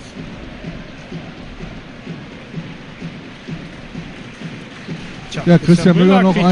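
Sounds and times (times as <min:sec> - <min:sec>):
stadium crowd at a football match applauding a substitution: 0:00.0 - 0:06.5
speech: 0:05.4 - 0:06.5.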